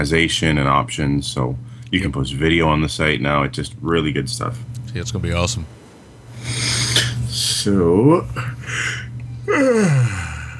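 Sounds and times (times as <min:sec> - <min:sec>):
speech: 0:00.0 - 0:05.8, 0:07.6 - 0:10.2
person yawning: 0:08.7 - 0:10.5.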